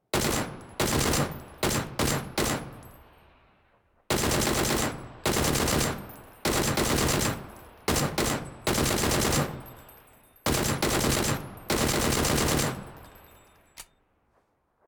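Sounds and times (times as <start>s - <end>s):
DP28 machine gun shots: 0.1s - 2.9s, 4.1s - 9.7s, 10.5s - 13.2s.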